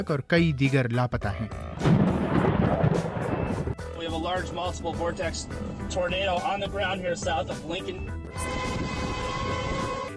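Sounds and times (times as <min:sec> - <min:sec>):
speech: 0:00.0 - 0:02.0, 0:04.3 - 0:08.8
thunderstorm rumble: 0:01.6 - 0:10.0
loud roaring wind of a thunderstorm buffeting the microphone: 0:01.6 - 0:10.1.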